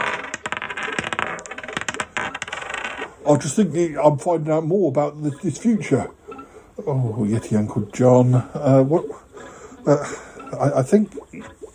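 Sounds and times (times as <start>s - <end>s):
dice rolling across a hard surface: 0.0s - 3.1s
speech: 3.2s - 6.2s, 6.8s - 9.2s, 9.8s - 11.6s.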